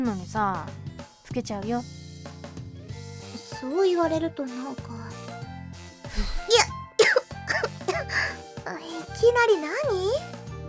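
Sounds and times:
speech: 0.0s - 2.0s, 3.6s - 5.2s, 6.2s - 6.8s, 8.1s - 10.4s
person coughing and choking on cigarette smoke: 6.1s - 8.4s
person gasping: 6.1s - 8.4s.

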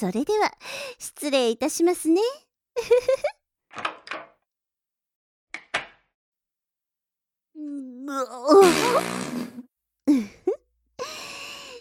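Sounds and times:
speech: 0.0s - 4.0s, 7.6s - 10.3s
person grunting and sighing with strain: 7.6s - 11.2s
loud drawn-out fart: 8.5s - 9.7s.

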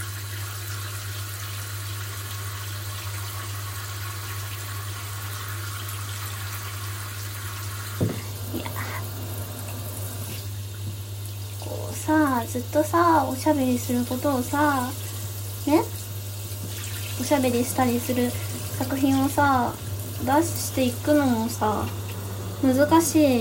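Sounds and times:
hot shower water running in a steady hiss: 0.0s - 23.3s
brief knock: 8.0s - 8.3s
speech: 12.0s - 15.0s, 15.6s - 15.9s, 17.2s - 22.0s, 22.6s - 23.3s.

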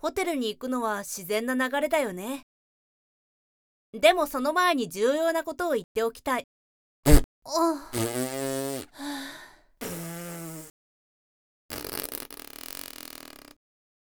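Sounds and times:
speech: 0.0s - 2.5s, 3.9s - 9.4s
farts: 7.1s - 7.3s, 7.9s - 9.0s, 9.8s - 10.7s, 11.7s - 13.6s.

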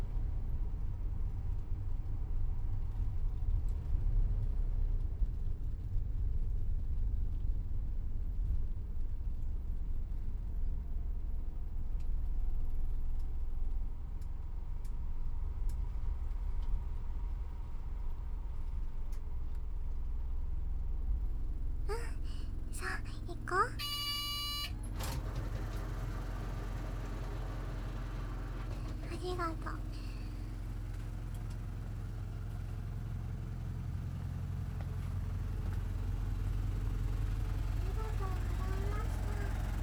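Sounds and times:
deep engine rumble inside a moving bus: 0.0s - 39.8s.

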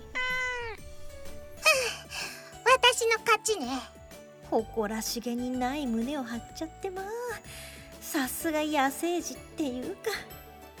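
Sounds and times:
cat meowing while squabbling over fried chicken: 0.0s - 1.6s
speech: 3.3s - 7.5s, 8.1s - 10.3s.

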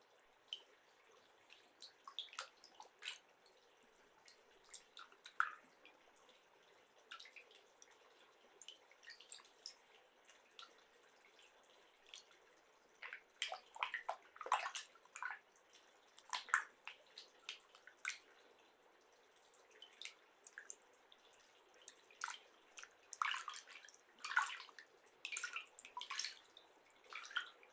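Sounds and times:
water splashing and dripping as clay is rinsed off: 0.4s - 18.6s, 19.7s - 27.7s.

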